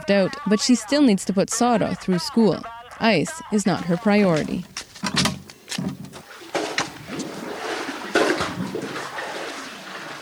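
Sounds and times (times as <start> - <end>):
speech: 0.1 - 5.2
hollow knocks and clatters: 4.7 - 7.4
water from a well splashing and gurgling into a jerry can: 5.9 - 10.2.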